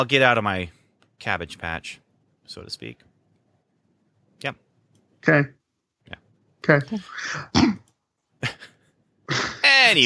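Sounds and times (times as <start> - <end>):
speech: 0.0 - 3.1, 4.4 - 4.6, 5.2 - 7.7, 9.3 - 10.0
person clearing throat: 7.1 - 7.9, 9.3 - 9.6.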